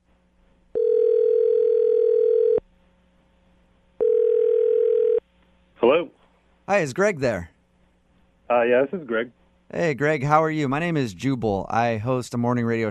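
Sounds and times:
telephone ringing tones: 0.8s - 2.6s, 4.0s - 5.2s
speech: 6.7s - 7.5s, 8.5s - 12.8s.

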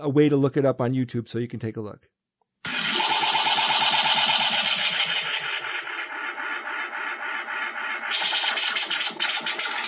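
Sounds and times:
speech: 0.0s - 2.2s
dense buzzing analog tape echo effect with distorted engine-like drone: 2.7s - 9.7s.

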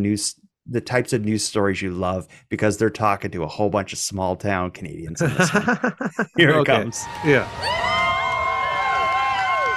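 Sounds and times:
speech: 0.0s - 8.0s
laughter: 5.2s - 7.4s
large crowd of onlookers cheering outdoors as a tractor is removed from a building: 6.4s - 9.7s.

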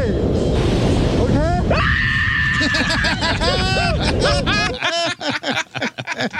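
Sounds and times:
steady roar of rushing wind while skydiving: 0.0s - 5.7s
man screaming in terror while skydiving: 1.7s - 4.6s
laughter: 2.5s - 6.3s.

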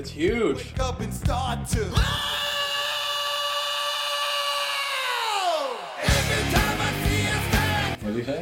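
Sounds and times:
speech: 0.0s - 2.5s
screamed vocal in a song: 1.9s - 8.0s
distorted heavy music: 6.0s - 8.0s.

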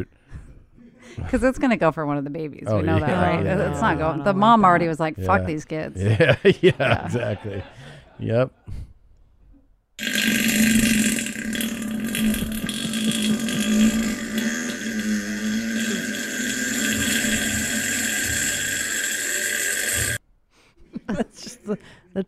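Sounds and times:
speech: 1.1s - 8.9s, 21.1s - 22.2s
laughter: 2.7s - 8.6s, 20.8s - 22.0s
long loud fart played from a video clip: 10.0s - 20.2s.

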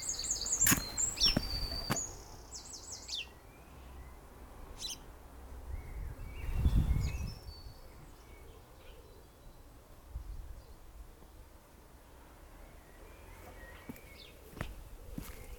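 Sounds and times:
small birds chirping and tweeting: 0.0s - 11.4s, 12.7s - 15.5s.

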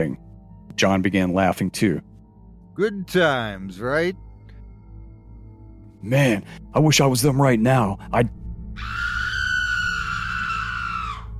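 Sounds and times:
speech: 0.8s - 2.1s, 2.8s - 4.2s, 6.0s - 9.0s
blood-curdling scream echoing through a valley: 8.8s - 11.3s.

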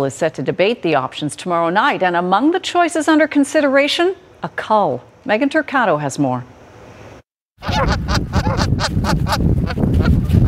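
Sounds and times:
speech: 0.0s - 6.6s, 7.6s - 10.4s
Canada geese honking in a dense chorus: 7.6s - 10.4s.

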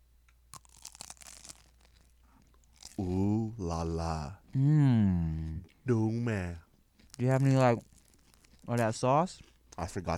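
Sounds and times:
crunching of a super crispy snack made that morning: 0.5s - 3.3s, 7.0s - 10.1s
speech: 3.0s - 6.6s, 7.2s - 8.0s, 8.7s - 10.1s.

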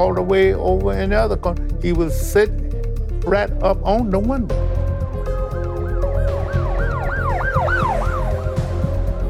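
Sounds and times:
speech: 0.0s - 2.6s, 3.2s - 4.7s
ambulance siren wailing as the ambulance arrives: 5.8s - 9.2s.

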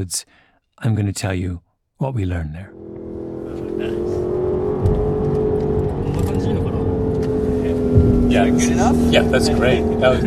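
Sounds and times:
speech: 0.0s - 2.9s, 3.5s - 5.0s, 6.1s - 6.8s, 8.3s - 10.2s
sports car engine revving during test drive in Aichi Prefecture, Japan: 2.7s - 10.2s.

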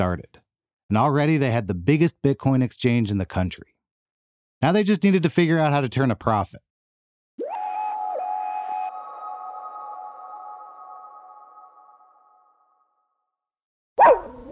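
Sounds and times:
speech: 0.0s - 3.8s, 4.6s - 6.7s
long steady whining tone: 7.4s - 12.4s
single sharp dog bark: 14.0s - 14.5s.

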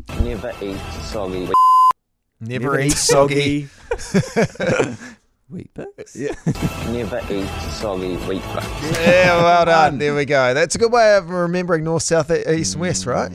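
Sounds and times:
speech: 0.2s - 1.7s, 2.4s - 13.3s
electronic censor beep over speech: 1.5s - 2.0s
laughter: 2.8s - 5.2s, 6.1s - 7.5s, 8.3s - 10.0s.

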